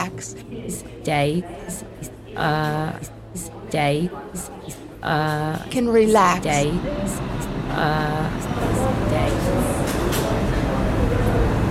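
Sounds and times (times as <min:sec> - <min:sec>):
speech: 0:00.0 - 0:09.6
voice announcing a train over a subway platform: 0:00.0 - 0:09.9
subway train approaching the station: 0:00.0 - 0:11.6.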